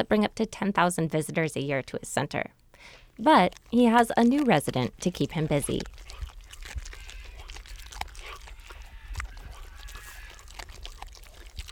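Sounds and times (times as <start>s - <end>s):
steady outdoor hiss: 0.0s - 5.7s
speech: 0.0s - 6.1s
young wolf chewing on a small vole: 2.8s - 11.7s.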